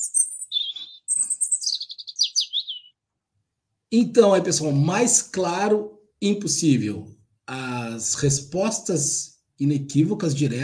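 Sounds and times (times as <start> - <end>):
small bird chirping: 0.0 - 3.0
speech: 3.9 - 10.6.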